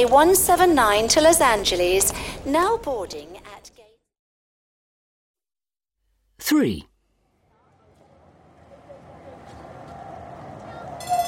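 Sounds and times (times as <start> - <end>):
speech: 0.0 - 3.8, 6.4 - 6.9
tram arriving with a low rumbling roar: 7.4 - 11.2.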